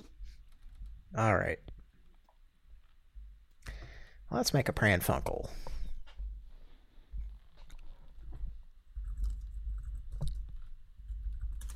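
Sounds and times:
speech: 0:01.2 - 0:01.7, 0:04.3 - 0:05.7
typing on a computer keyboard to write a chat message: 0:09.0 - 0:11.7.

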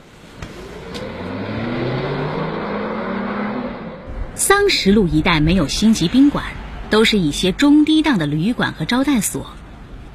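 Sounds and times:
car engine accelerating as it pulls away: 0:00.2 - 0:04.4
speech: 0:04.4 - 0:09.6.

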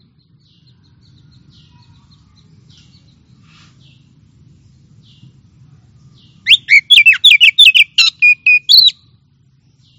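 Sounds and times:
Oriental magpie-robin singing whistled song: 0:06.4 - 0:09.1.

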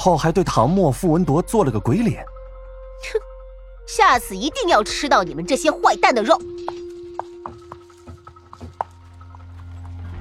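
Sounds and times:
speech: 0:00.0 - 0:02.3, 0:03.0 - 0:03.3, 0:03.9 - 0:06.8
hoof clip-clop of horses pulling a pumpkin carriage: 0:05.8 - 0:10.1
rumble: 0:08.5 - 0:10.1.

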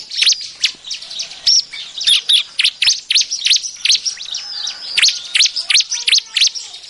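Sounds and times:
bar-winged prinia calling as lure calls: 0:00.0 - 0:06.8.

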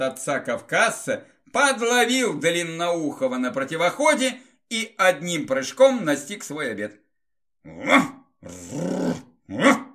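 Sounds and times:
speech: 0:00.0 - 0:07.0, 0:07.6 - 0:09.8
dog growling on discovering a person: 0:07.7 - 0:09.9.

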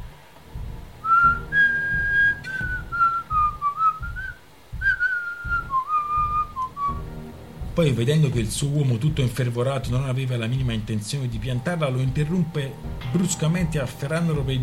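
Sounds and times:
rhythmic low thumps: 0:00.0 - 0:14.6
woman whistling a tune: 0:01.0 - 0:07.0
speech: 0:07.8 - 0:14.6.

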